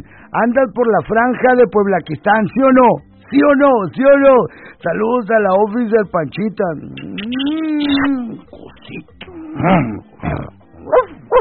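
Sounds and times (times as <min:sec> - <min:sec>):
speech: 0:00.0 - 0:10.6
man imitating a dog barking: 0:07.2 - 0:11.3.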